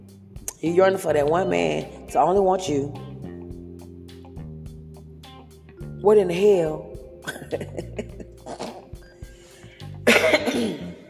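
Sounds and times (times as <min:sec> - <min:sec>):
speech: 0:00.6 - 0:03.0, 0:06.0 - 0:08.0
person coughing with hacking bursts: 0:07.3 - 0:09.2, 0:10.0 - 0:11.0.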